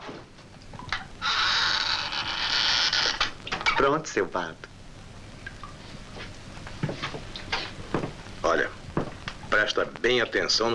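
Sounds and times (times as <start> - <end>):
door creaking shut: 1.2 - 3.9
speech: 3.8 - 4.7, 9.6 - 10.7
faint knocks: 6.2 - 8.3, 8.9 - 9.4.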